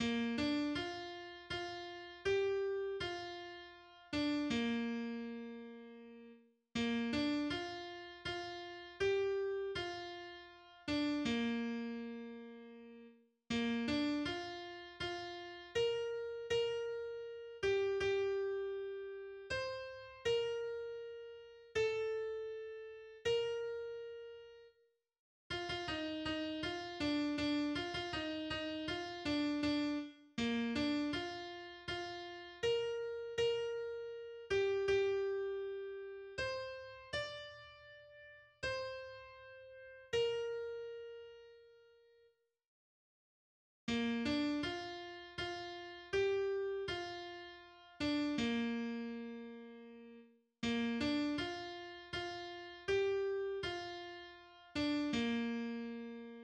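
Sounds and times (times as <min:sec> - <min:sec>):
piano: 0:00.0 - 0:24.8, 0:25.5 - 0:42.2, 0:43.9 - 0:56.4.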